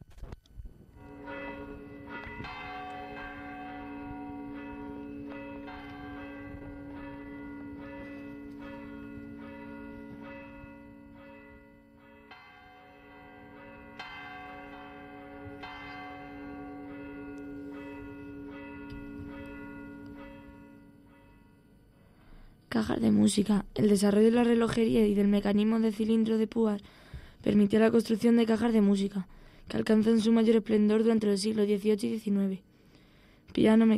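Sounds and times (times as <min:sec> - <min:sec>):
church bells ringing from the church of Torre de Juan Abad: 0:01.0 - 0:22.0
speech: 0:22.8 - 0:32.7, 0:33.6 - 0:33.9.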